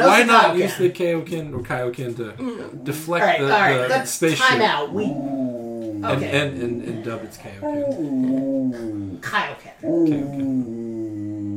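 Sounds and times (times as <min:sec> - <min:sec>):
speech: 0:00.1 - 0:10.9
dog howling and whimpering: 0:07.6 - 0:09.2, 0:09.8 - 0:11.5.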